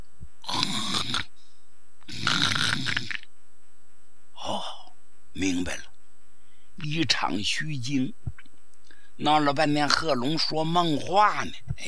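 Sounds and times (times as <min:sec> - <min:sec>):
man snoring loudly in a room: 0:00.4 - 0:01.3, 0:02.1 - 0:03.2
speech: 0:06.8 - 0:08.4, 0:09.2 - 0:11.8.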